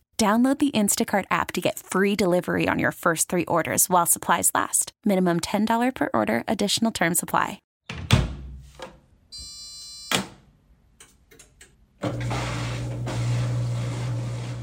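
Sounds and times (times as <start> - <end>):
speech: 0.2 - 8.0
washing machine running at home: 12.0 - 14.6.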